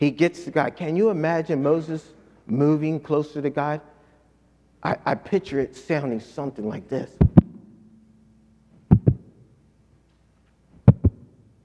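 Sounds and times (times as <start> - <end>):
speech: 0.0 - 3.9, 4.8 - 7.3
heartbeat: 7.2 - 7.6, 8.8 - 9.4, 10.8 - 11.3.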